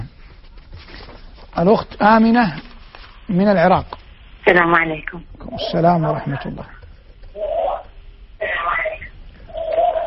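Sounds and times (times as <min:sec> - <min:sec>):
speech: 0:01.6 - 0:02.6, 0:03.3 - 0:06.8
television voices in background of phone line from Iraq: 0:02.0 - 0:10.0.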